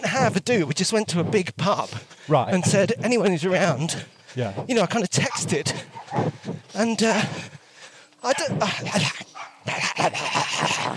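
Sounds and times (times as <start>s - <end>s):
speech: 0.1s - 7.5s, 8.2s - 10.9s
dog barking and yipping excitedly: 5.3s - 6.5s, 8.6s - 9.7s
laughter: 8.3s - 10.9s.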